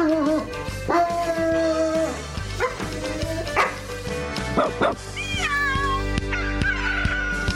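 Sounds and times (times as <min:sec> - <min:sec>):
dog howling: 0:00.0 - 0:03.8
steady musical backing: 0:00.0 - 0:07.5
dog barking: 0:02.6 - 0:02.8, 0:03.6 - 0:03.8, 0:04.6 - 0:05.0.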